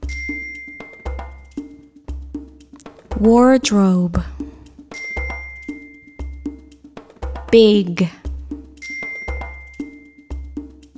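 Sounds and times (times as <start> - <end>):
bright metallic bell ding: 0.0 - 1.4, 8.8 - 10.2
speech: 3.2 - 4.3, 7.5 - 8.2.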